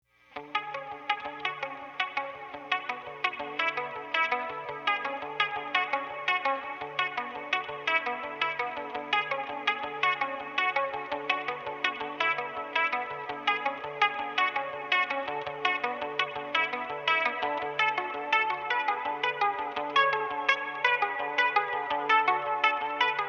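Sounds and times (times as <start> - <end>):
80s Telecaster electric guitar through Demeter Reverbulator: 0.3 - 23.2.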